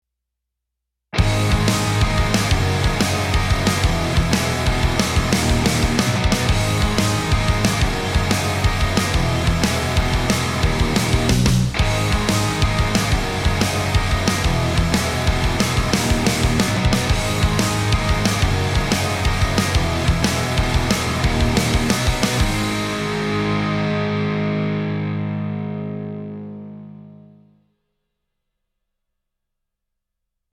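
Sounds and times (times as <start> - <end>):
hard rock guitars: 1.2 - 27.3.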